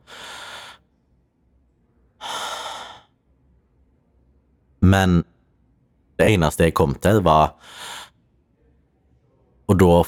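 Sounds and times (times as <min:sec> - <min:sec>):
person trying to draw breath: 0:00.0 - 0:00.8, 0:02.2 - 0:03.1, 0:07.6 - 0:08.1
speech: 0:04.8 - 0:05.4, 0:06.2 - 0:08.0, 0:09.7 - 0:10.0.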